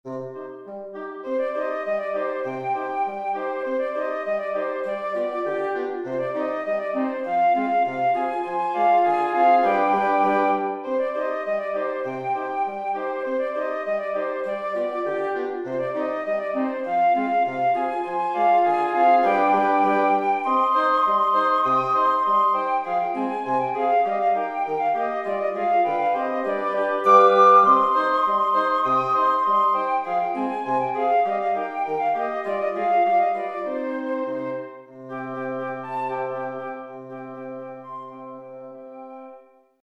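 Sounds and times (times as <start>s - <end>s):
wind quintet playing: 0.1s - 39.5s.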